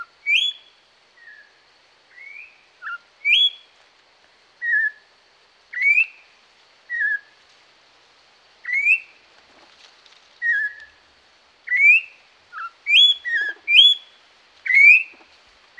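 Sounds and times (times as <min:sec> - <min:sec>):
Orange-backed troupial singing loud mellow whistles in the Pantanal: 0:00.0 - 0:03.7, 0:04.6 - 0:05.1, 0:05.7 - 0:06.3, 0:06.9 - 0:07.4, 0:08.6 - 0:09.2, 0:10.4 - 0:11.0, 0:11.7 - 0:15.2.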